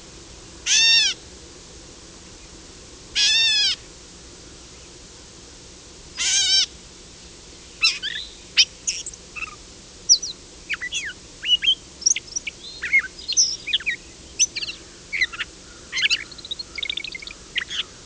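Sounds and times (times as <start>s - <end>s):
Gray Catbird calling: 0.7s - 1.2s, 3.2s - 3.8s, 7.8s - 18.0s.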